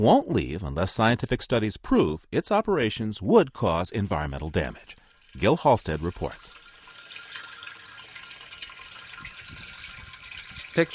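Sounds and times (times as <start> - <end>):
speech: 0.0 - 6.5, 10.8 - 10.9
water pouring from a pipe into a metal can at a well: 4.0 - 10.9.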